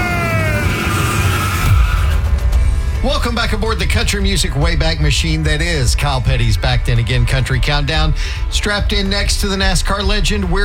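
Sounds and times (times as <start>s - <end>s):
race car tires squealing: 0.0s - 2.3s
race car engine roaring at high revs: 0.0s - 3.9s
speech: 3.0s - 10.6s.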